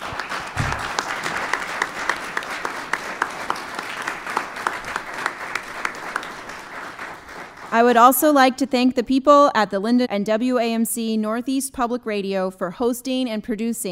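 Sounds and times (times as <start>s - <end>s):
room full of people applauding: 0.0s - 8.1s
speech: 7.7s - 13.9s.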